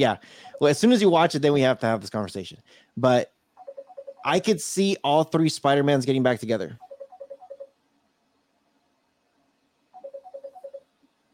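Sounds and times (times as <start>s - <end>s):
speech: 0.0s - 3.4s, 4.2s - 6.8s
phone ringing with rapid warbling electronic trills: 0.3s - 0.8s, 3.6s - 4.5s, 6.8s - 7.7s, 10.0s - 10.8s.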